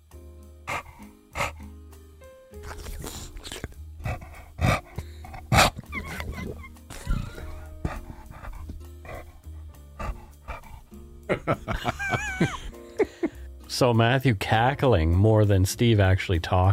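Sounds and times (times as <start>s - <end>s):
dog's brief sharp sniffs: 0.7s - 1.7s, 2.6s - 5.9s, 6.9s - 11.0s
male dog panting and breathing heavily: 0.7s - 1.8s, 2.6s - 12.2s
dog's smacking mouth noises: 2.6s - 11.0s
dog's wet slobbery snorts: 2.6s - 11.0s
speech: 11.3s - 12.6s, 13.8s - 16.7s
laughter: 11.3s - 13.3s.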